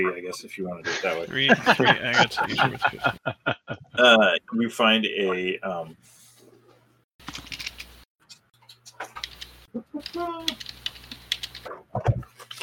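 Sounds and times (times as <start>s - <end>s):
speech: 0.0s - 6.2s, 9.8s - 10.8s
laughter: 0.8s - 4.2s
typing on a computer keyboard: 7.2s - 7.9s, 9.2s - 11.7s.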